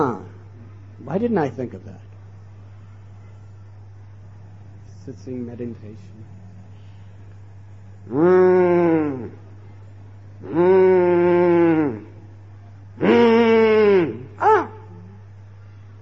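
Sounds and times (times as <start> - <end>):
faint low hum: 0.0 - 16.0
speech: 1.0 - 2.1, 5.0 - 6.4, 8.1 - 9.4, 10.4 - 11.0
cow mooing: 8.1 - 9.4, 10.4 - 12.2.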